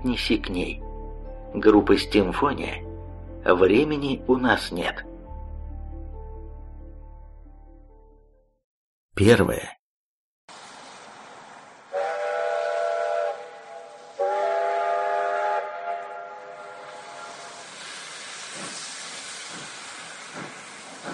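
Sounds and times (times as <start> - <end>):
speech: 0.0 - 0.8, 1.5 - 2.8, 3.4 - 5.1, 9.2 - 9.8
steam train hissing rumble pulling away from a platform: 10.5 - 21.1
steam locomotive whistle blasts: 11.9 - 18.3.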